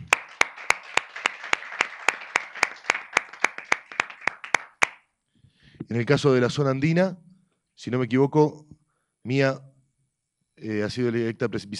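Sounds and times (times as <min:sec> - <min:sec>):
applause at a council meeting: 0:00.0 - 0:05.0
speech: 0:05.9 - 0:07.2, 0:07.8 - 0:09.7, 0:10.6 - 0:11.7.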